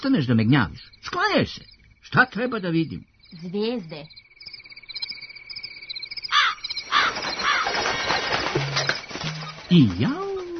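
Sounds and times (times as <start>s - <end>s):
speech: 0.0s - 4.2s, 9.7s - 10.2s
crickets chirping at night: 0.0s - 10.5s
magpie wings flapping: 6.3s - 10.5s
rustling: 6.3s - 10.5s.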